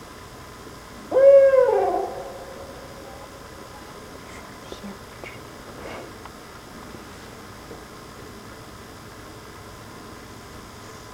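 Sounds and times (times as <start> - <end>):
owl hoot: 1.1 - 4.0.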